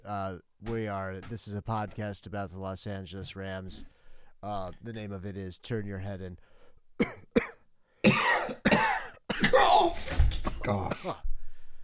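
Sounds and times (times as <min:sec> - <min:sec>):
speech: 0:00.1 - 0:08.2, 0:10.7 - 0:11.3
person coughing: 0:07.0 - 0:11.2.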